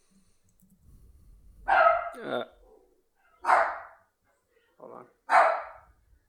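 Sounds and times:
dogs barking: 1.7 - 2.2, 3.4 - 4.1, 5.3 - 6.0
speech: 2.2 - 2.6.

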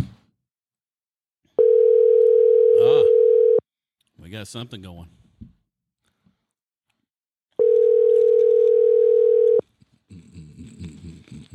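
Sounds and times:
phone ringback tones: 1.6 - 3.6, 7.6 - 9.6
speech: 4.3 - 5.5.

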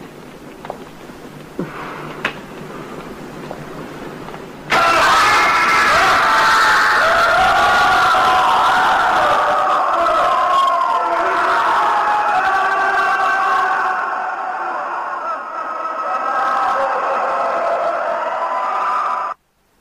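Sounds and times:
chorus of anguished screams and wails from many voices: 4.7 - 19.4.

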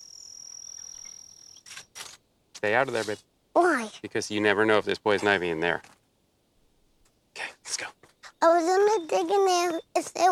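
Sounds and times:
cricket chirping outdoors: 0.0 - 1.8
speech: 2.6 - 5.9, 8.6 - 10.3.

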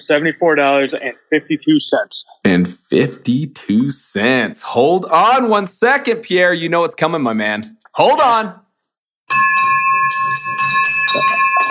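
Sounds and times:
speech: 0.0 - 8.6
bell ringing: 9.3 - 11.6
laughter: 11.1 - 11.6.

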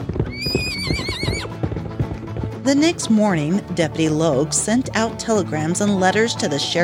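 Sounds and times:
horse hooves clip-clopping: 0.0 - 6.6
horse neighing: 0.3 - 1.5
speech: 2.7 - 6.8.

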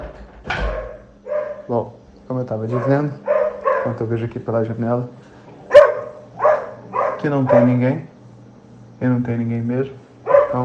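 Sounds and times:
dog barking: 0.6 - 1.7, 2.7 - 4.0, 5.7 - 8.0, 10.2 - 10.6
speech: 1.7 - 5.3, 7.2 - 8.1, 9.0 - 10.6.

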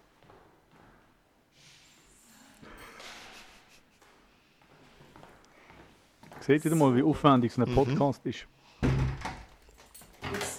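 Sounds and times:
speech: 6.4 - 8.6
door thudding shut: 8.8 - 9.5.

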